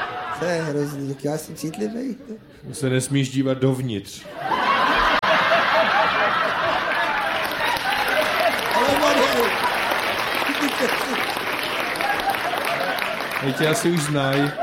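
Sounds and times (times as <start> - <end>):
crowd chuckling: 0.0 - 2.5, 4.3 - 14.6
speech: 0.4 - 4.6, 13.4 - 14.6
audience applause: 4.8 - 14.6.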